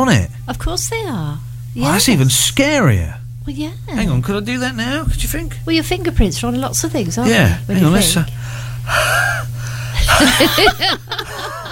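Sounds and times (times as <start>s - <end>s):
speech: 0.0s - 9.3s, 10.2s - 11.4s
man gasping: 8.4s - 10.1s
man breathing heavily onto a phone screen: 8.4s - 10.2s
man chuckling: 9.0s - 11.7s.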